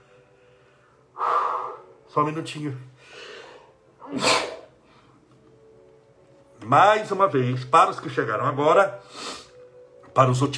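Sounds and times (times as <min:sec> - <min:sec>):
speech: 0:02.1 - 0:03.2, 0:04.1 - 0:04.4, 0:06.7 - 0:09.3, 0:10.2 - 0:10.5
person with a cold sneezing: 0:04.0 - 0:04.8.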